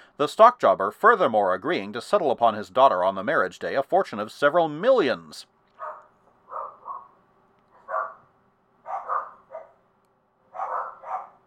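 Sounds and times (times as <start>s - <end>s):
speech: 0.2s - 5.6s
dogs barking: 5.8s - 9.9s, 10.5s - 11.4s.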